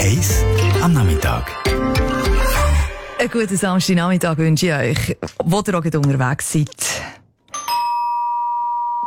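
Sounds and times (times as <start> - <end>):
speech: 0.2 - 2.0, 3.2 - 7.2
doorbell chime ringing: 7.5 - 9.0.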